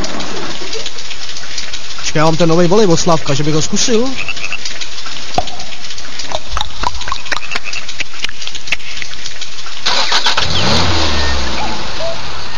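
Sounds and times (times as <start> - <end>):
sharp clicks and knocks: 0.0 - 9.8
Škoda Octavia car engine starting and idling: 0.0 - 12.5
speech: 2.2 - 4.5.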